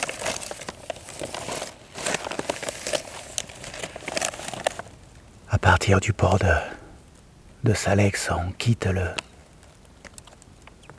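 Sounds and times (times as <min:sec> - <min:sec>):
paper IGN topographic map being unfolded, crinkling and rustling: 0:00.0 - 0:05.8
speech: 0:05.8 - 0:06.8, 0:07.6 - 0:09.2.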